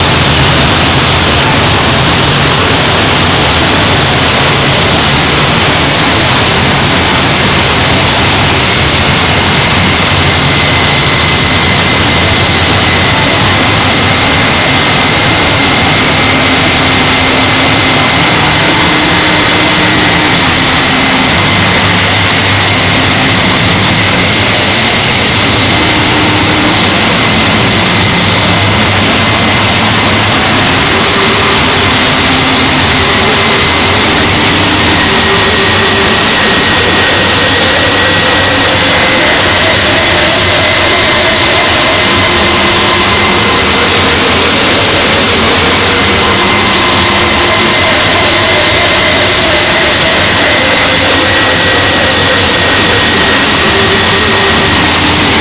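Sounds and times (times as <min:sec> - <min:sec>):
ventilator: 0:00.0 - 0:55.4.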